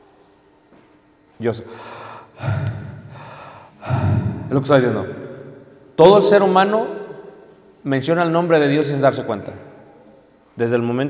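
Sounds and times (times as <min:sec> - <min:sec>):
speech: 0:01.4 - 0:02.7, 0:04.5 - 0:05.2, 0:06.0 - 0:07.0, 0:07.8 - 0:09.7, 0:10.6 - 0:11.0
slow deliberate breaths into a microphone: 0:01.7 - 0:04.5.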